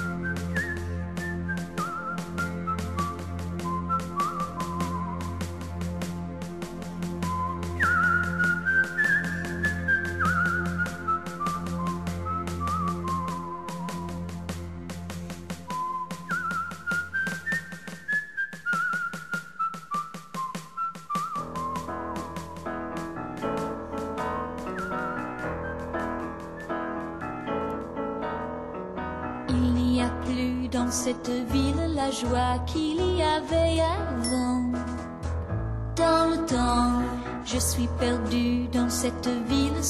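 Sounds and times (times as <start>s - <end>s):
person whistling a slow mournful melody: 0.0s - 5.7s, 7.2s - 14.5s, 15.7s - 22.6s, 23.8s - 27.7s
rhythmic instrumental backing with a low bass line: 0.0s - 17.4s, 21.4s - 39.8s
speech: 30.9s - 34.4s, 37.5s - 39.8s.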